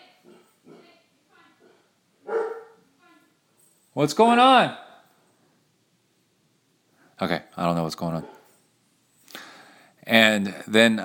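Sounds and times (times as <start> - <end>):
dogs barking in short yaps: 1.6 - 2.8, 8.1 - 8.5
speech: 4.0 - 4.8, 10.6 - 11.0.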